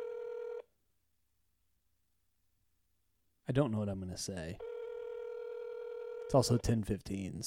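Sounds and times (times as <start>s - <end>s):
telephone ringback tone: 0.0s - 0.6s, 4.6s - 6.6s
speech: 3.5s - 4.7s, 6.3s - 7.4s.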